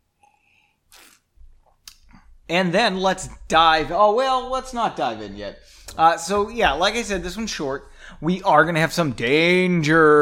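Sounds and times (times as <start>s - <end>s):
person sipping a drink: 0.2s - 2.3s
speech: 2.5s - 10.2s.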